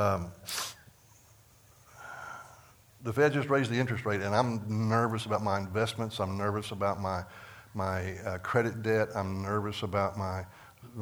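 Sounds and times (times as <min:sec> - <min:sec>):
speech: 0:00.0 - 0:00.6, 0:03.0 - 0:10.9
person sneezing: 0:00.5 - 0:00.8.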